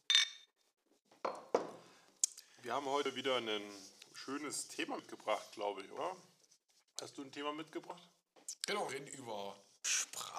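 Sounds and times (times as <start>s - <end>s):
glasses knocking and tapping as drinks are set down: 1.2s - 1.8s
speech: 2.7s - 6.3s, 7.0s - 9.7s.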